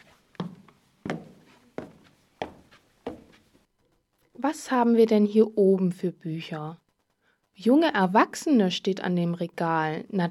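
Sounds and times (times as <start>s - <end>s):
footsteps climbing a staircase: 0.0s - 4.0s
speech: 4.4s - 6.8s, 7.6s - 10.2s.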